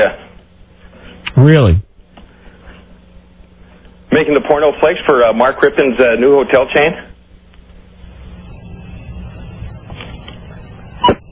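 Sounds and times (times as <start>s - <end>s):
speech: 0.0s - 0.2s, 1.4s - 1.9s, 4.1s - 7.1s
high-pitched chorus of crickets chirping: 4.5s - 6.7s, 7.7s - 11.3s.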